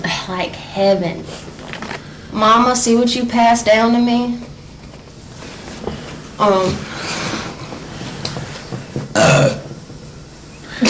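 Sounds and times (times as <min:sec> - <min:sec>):
faint room noise: 0:00.0 - 0:10.8
speech: 0:00.3 - 0:01.5, 0:02.3 - 0:04.5, 0:06.4 - 0:06.9
person burping: 0:09.1 - 0:09.7.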